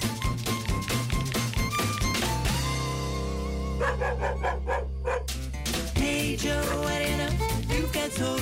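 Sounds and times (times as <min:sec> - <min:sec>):
music: 0:00.0 - 0:08.4
small brown dog yapping: 0:03.8 - 0:05.3.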